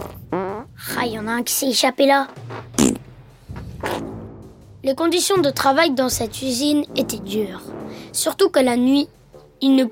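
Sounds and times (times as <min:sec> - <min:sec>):
loud sputtering fart: 0:00.0 - 0:00.8, 0:02.5 - 0:03.1, 0:03.8 - 0:04.0
speech: 0:00.3 - 0:02.9, 0:04.8 - 0:09.9.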